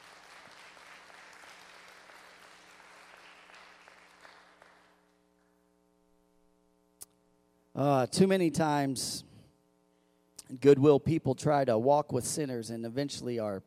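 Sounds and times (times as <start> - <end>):
crowd clapping in praise: 0.0 - 5.0
quiet hum: 0.0 - 13.6
speech: 7.8 - 9.3, 10.5 - 13.6.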